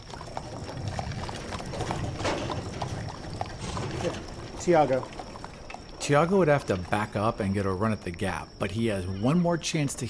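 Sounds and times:
horse hooves clip-clopping: 0.0 - 7.3
horse-drawn wagon rolling and rattling: 0.0 - 8.3
speech: 4.0 - 5.2, 6.1 - 10.0.

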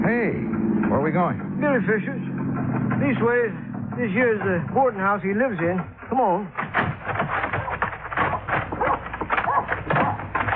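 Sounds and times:
speech: 0.1 - 2.3, 3.0 - 6.9
male dog barking excitedly in a boarding house: 7.4 - 10.5.

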